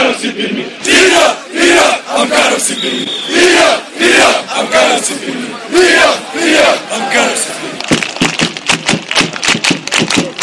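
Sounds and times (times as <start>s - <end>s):
football fans chanting in stadium stands: 0.0s - 7.8s
sharp rapid clapping or drumming: 7.8s - 10.4s.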